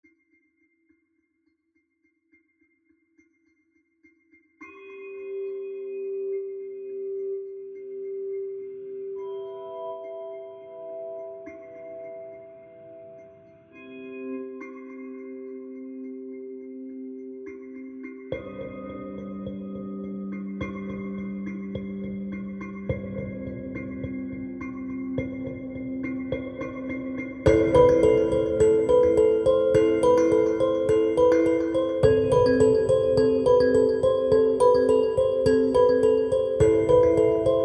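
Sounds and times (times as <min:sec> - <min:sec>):
dark kalimba: 0:18.3 - 0:37.6.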